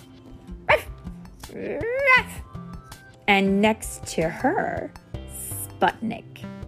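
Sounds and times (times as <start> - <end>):
dog barking: 0.7 - 1.0
speech: 1.5 - 1.9, 3.3 - 5.0, 5.8 - 6.3.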